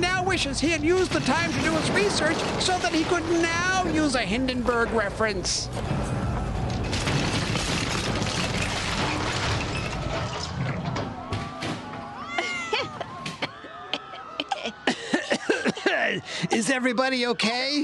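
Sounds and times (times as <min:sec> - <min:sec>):
building crashing into the ground and exploding: 0:00.1 - 0:12.1
speech: 0:00.3 - 0:06.1, 0:16.6 - 0:17.8
laughter: 0:12.3 - 0:17.0.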